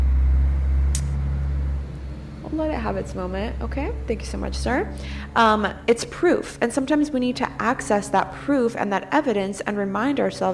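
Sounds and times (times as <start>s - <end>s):
heavy truck engine rumbling past: 0.0s - 10.5s
speech: 2.5s - 10.5s
truck air brakes hissing: 4.9s - 5.4s.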